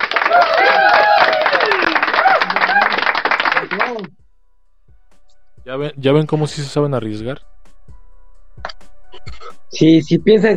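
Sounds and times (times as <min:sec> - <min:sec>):
whooping cheering voices: 0:00.0 - 0:04.0
loud dense applause: 0:00.0 - 0:04.1
speech: 0:05.7 - 0:07.5, 0:09.7 - 0:10.5.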